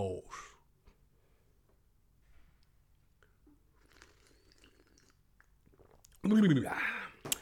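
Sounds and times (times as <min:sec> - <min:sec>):
person sipping a hot drink: 0:02.6 - 0:07.4
loud voiced sigh of satisfaction: 0:06.6 - 0:07.4.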